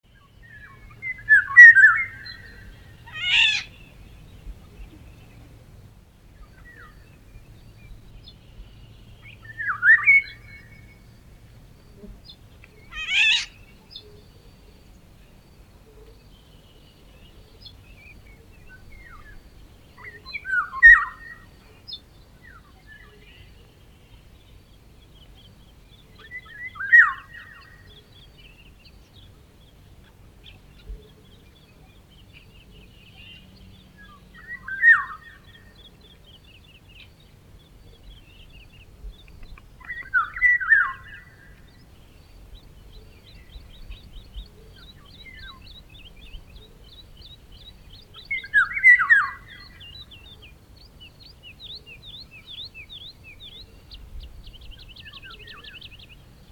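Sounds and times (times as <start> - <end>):
Eurasian golden oriole singing: 0.0 - 56.4.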